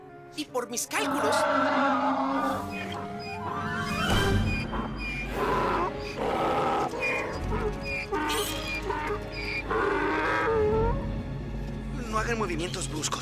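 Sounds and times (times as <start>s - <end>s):
speech: 0.3s - 2.8s, 12.2s - 13.2s
donkey braying: 1.0s - 11.0s.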